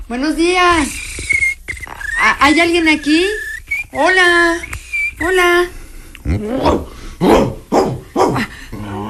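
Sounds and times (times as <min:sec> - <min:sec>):
speech: 0:00.1 - 0:01.0, 0:02.2 - 0:07.5
dog barking: 0:06.6 - 0:08.5.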